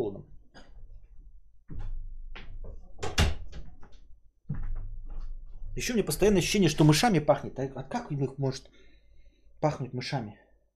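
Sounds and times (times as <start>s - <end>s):
door being handled with clunks and knocks: 2.7s - 5.3s
speech: 5.8s - 8.8s, 9.6s - 10.4s.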